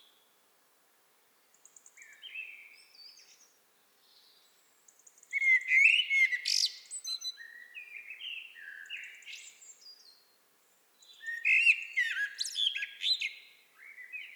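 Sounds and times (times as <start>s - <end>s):
common blackbird Turdus merula singing: 5.3s - 10.0s, 11.0s - 14.3s.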